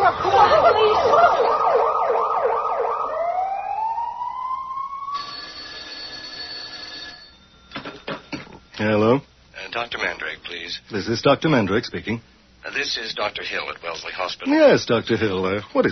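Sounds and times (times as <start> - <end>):
ambulance siren: 0.1 - 7.2
speech: 10.7 - 15.9.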